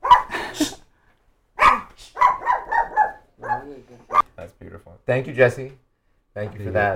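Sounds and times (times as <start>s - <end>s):
dog barking: 0.0s - 0.4s, 1.6s - 4.3s
speech: 5.1s - 5.8s, 6.4s - 6.9s.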